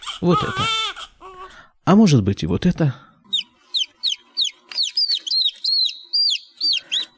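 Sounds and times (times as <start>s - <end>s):
speech: 0.2s - 0.9s, 1.9s - 3.1s
newly hatched chick from an incubator egg cheeping: 3.3s - 7.1s.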